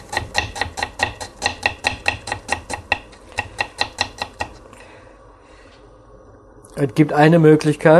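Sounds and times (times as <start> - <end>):
knife chopping food into thin slices on a cutting board: 0.0 - 4.6
speech: 6.8 - 7.9.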